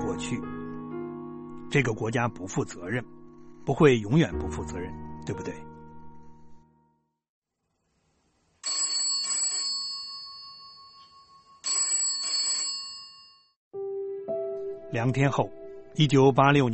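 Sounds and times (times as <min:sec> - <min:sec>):
speech: 0:00.1 - 0:00.6, 0:01.7 - 0:05.7, 0:14.9 - 0:16.7
telephone ringing in long trilling bursts: 0:08.6 - 0:13.6.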